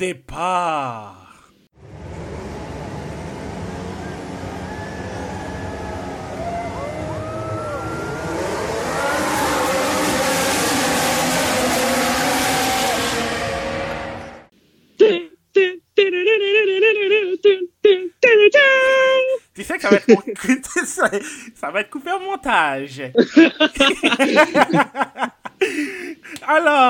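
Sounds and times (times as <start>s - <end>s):
speech: 0.0s - 1.2s, 19.8s - 26.8s
person vocally imitating roaring race-car engines: 3.0s - 14.0s, 15.0s - 20.4s
person singing a theme melody: 15.0s - 19.4s
laughter: 19.8s - 21.4s, 23.1s - 26.5s.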